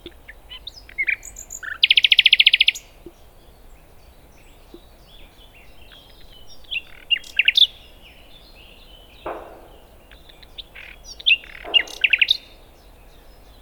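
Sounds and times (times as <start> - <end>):
common nightingale song with rattling trill, Luscinia megarhynchos: 0.0 - 13.6
faint steady background hiss: 0.0 - 13.6.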